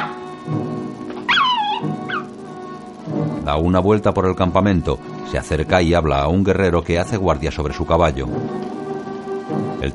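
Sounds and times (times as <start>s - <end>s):
dog at a camp yelping after a stone is thrown at it: 0.0s - 0.4s, 1.2s - 2.4s
speech: 3.4s - 8.8s, 9.5s - 9.9s.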